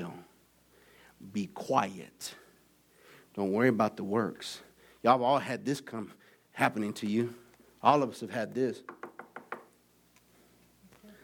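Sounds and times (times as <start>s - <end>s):
speech: 1.3s - 2.4s, 3.4s - 9.0s
knuckles knocking on a door: 8.9s - 9.7s.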